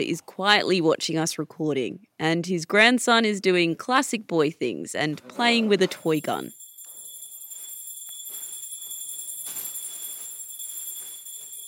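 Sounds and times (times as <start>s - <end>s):
speech: 0.0s - 6.6s
small Hindu prayer bell ringing: 6.1s - 11.6s.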